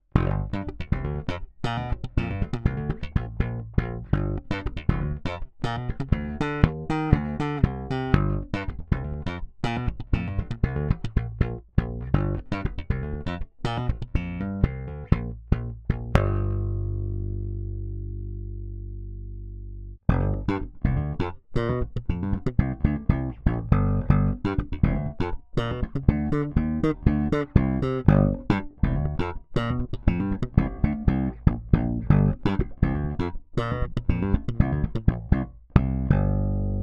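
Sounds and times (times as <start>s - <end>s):
slap bass guitar: 0.0s - 36.8s.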